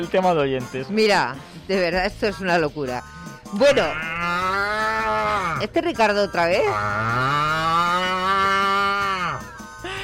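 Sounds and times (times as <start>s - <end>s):
speech: 0.0s - 4.4s, 5.6s - 7.6s
person imitating a cow mooing: 3.2s - 5.8s, 6.6s - 9.6s.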